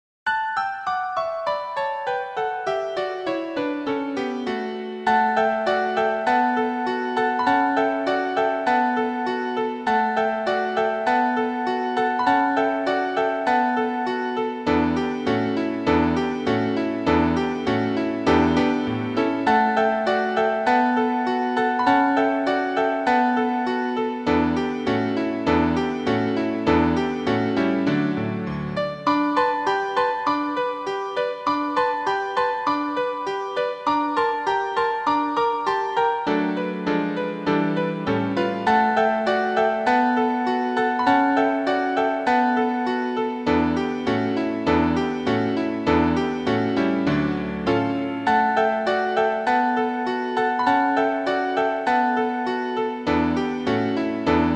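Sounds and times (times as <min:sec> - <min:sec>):
piano accompaniment track: 0:00.3 - 0:54.5.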